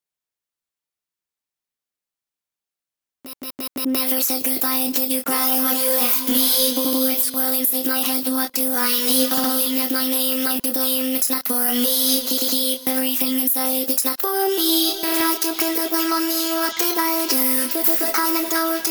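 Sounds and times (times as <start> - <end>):
main vocals: 3.8 - 18.8.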